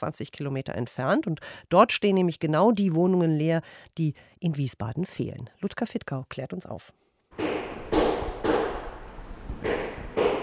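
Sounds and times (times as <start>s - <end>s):
speech: 0.0s - 7.5s
sharp forceful impacts from renovation work: 7.4s - 10.4s
steady rumble: 7.7s - 10.4s.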